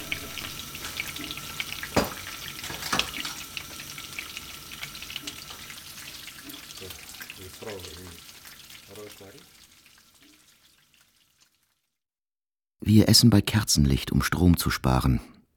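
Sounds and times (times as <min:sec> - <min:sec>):
fish sizzling in a hot pan: 0:00.0 - 0:12.0
speech: 0:12.9 - 0:15.3.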